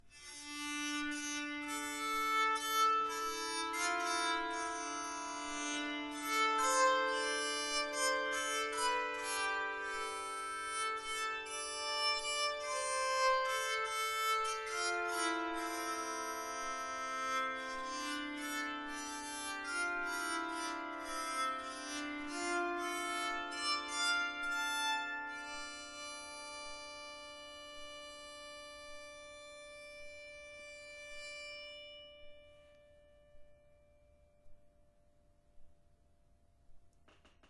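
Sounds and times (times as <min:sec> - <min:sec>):
tenor bowed psaltery: 0:00.2 - 0:27.5.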